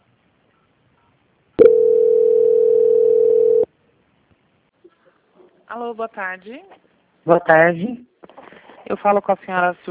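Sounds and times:
telephone tone beeps during bank call transfer: 1.6 - 3.6
speech: 5.9 - 8.1, 8.8 - 9.9.

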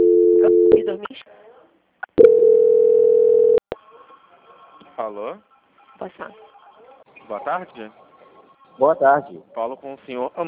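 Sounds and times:
telephone tone during a call transfer: 0.0 - 0.9, 2.2 - 3.6
speech: 0.9 - 1.4, 5.0 - 6.5, 7.3 - 8.0, 8.8 - 10.4.

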